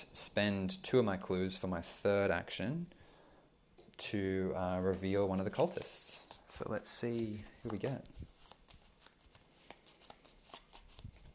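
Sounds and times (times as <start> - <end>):
speech: 0.2 - 3.0, 4.1 - 8.3
deck of cards being shuffled: 4.8 - 11.3.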